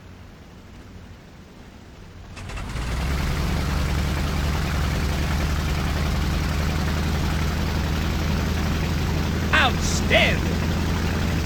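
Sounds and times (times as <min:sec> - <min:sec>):
propeller plane engine throttling up for takeoff: 0:02.8 - 0:11.4.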